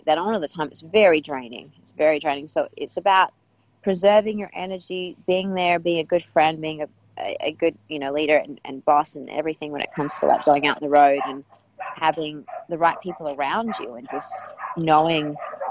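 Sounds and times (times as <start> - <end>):
speech: 0.1 - 15.5
neighbor's dogs barking: 10.0 - 15.6.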